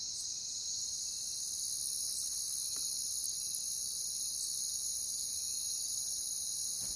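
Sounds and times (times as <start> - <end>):
crickets trilling: 0.1 - 6.9.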